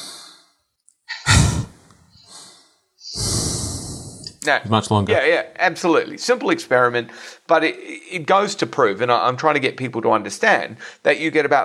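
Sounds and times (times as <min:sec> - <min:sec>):
forceful exhalation through the nose: 0:01.1 - 0:04.3
speech: 0:04.4 - 0:11.6.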